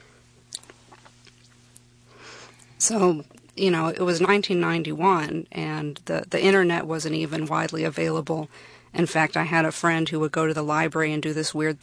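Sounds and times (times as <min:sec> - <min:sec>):
steady low electrical hum: 0:00.0 - 0:11.8
slurps and swallows of water: 0:00.5 - 0:01.6
person sipping water: 0:00.5 - 0:02.7
speech: 0:02.8 - 0:11.8.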